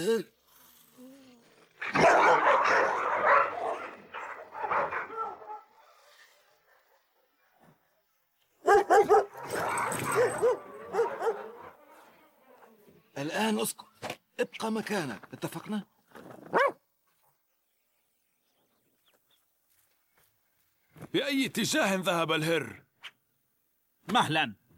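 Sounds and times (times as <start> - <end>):
speech: 0.0 - 0.4, 13.3 - 16.0, 21.3 - 22.8, 24.1 - 24.6
dog barking and whining: 1.8 - 5.8, 8.6 - 11.8, 16.5 - 16.8.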